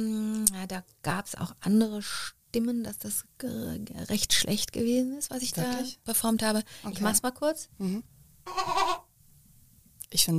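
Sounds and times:
speech: 0.0s - 8.8s, 10.1s - 10.3s
human voice imitating a goat bleating: 8.5s - 9.1s.

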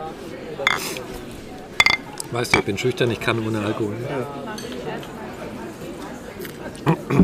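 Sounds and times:
glasses clinking in a toast: 0.7s - 1.0s, 1.8s - 2.8s
speech: 2.3s - 5.6s, 6.8s - 7.2s.

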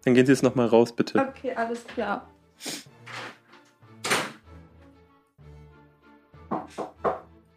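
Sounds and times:
speech: 0.0s - 2.9s
hollow wooden knocks on a door: 6.5s - 7.3s.

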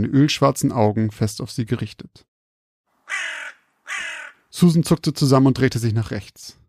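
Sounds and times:
speech: 0.0s - 2.3s, 4.6s - 6.6s
raven perched in a tree cawing: 3.0s - 4.5s.

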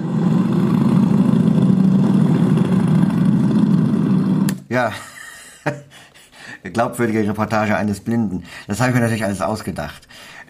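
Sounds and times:
group of motorcycle engines rumbling and idling: 0.0s - 4.5s
laughter: 4.8s - 6.0s
speech: 4.8s - 6.0s, 6.6s - 10.4s.

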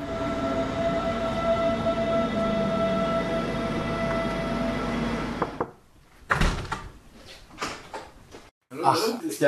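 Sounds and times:
S-Bahn commuter train interior hum with tonal whine: 0.0s - 5.6s
train door and carriage clunking as the train stops: 1.0s - 7.0s
speech: 8.9s - 9.4s.

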